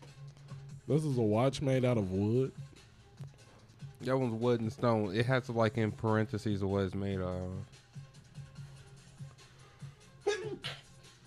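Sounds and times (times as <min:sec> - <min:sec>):
speech: 0:00.9 - 0:02.6, 0:04.0 - 0:07.8
person sneezing: 0:10.2 - 0:10.9.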